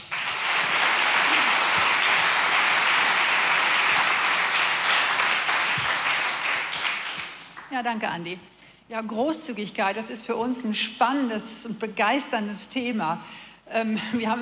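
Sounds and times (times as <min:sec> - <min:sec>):
audience applause: 0:00.0 - 0:07.6
laughter: 0:01.0 - 0:02.4
speech: 0:07.8 - 0:14.4.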